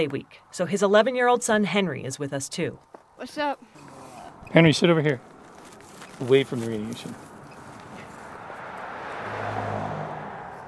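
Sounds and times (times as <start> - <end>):
speech: 0.0 - 5.3, 6.2 - 7.3
car speeding up a steep canyon road: 3.6 - 10.6.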